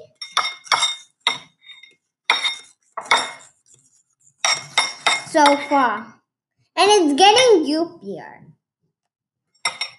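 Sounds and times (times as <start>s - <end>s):
spoon clinking against a bowl while stirring a soupy cake-powder mixture: 0.0s - 3.5s, 4.4s - 5.8s, 9.6s - 9.9s
speech: 5.3s - 6.2s, 6.8s - 8.6s.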